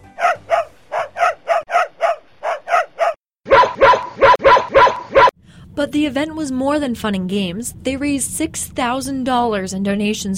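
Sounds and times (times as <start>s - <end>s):
corgis barking and yipping: 0.0s - 5.4s
speech: 5.8s - 10.3s.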